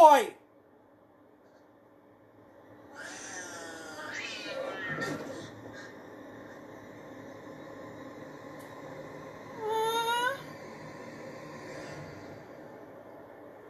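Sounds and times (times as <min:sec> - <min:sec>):
speech: 0:00.1 - 0:00.4
stray cat held by a boy meowing: 0:02.9 - 0:05.2.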